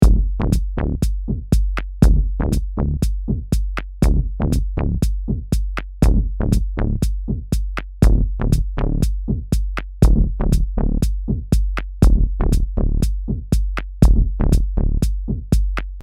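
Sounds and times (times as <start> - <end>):
synth bass loop: 0.0 - 1.2, 2.0 - 3.2, 4.0 - 5.2, 6.0 - 7.2, 8.0 - 9.4, 10.0 - 11.4, 12.0 - 13.4, 14.0 - 15.3
electronic drum loop: 0.0 - 16.0.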